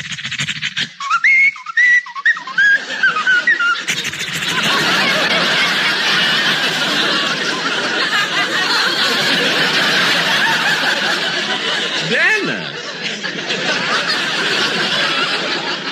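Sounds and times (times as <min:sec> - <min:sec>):
dog whistling a tune: 0:01.0 - 0:04.0
laughter: 0:02.4 - 0:15.9.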